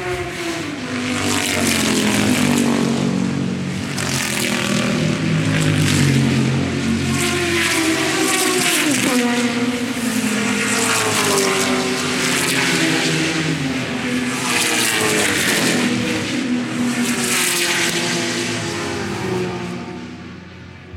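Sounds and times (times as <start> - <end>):
racing car engines roaring down the start-finish straight at the Goodwood Members' Meeting: 0.0 - 20.9.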